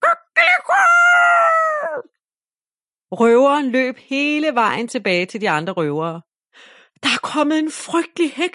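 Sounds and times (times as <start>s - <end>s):
rooster crowing: 0.0s - 2.1s
speech: 3.1s - 8.5s.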